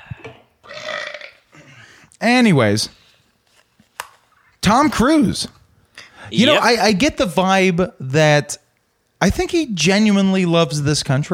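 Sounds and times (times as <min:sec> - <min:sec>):
drawn-out loud raspy burp: 0:00.3 - 0:01.4
speech: 0:02.2 - 0:03.0, 0:04.6 - 0:05.6, 0:06.3 - 0:08.6, 0:09.2 - 0:11.3.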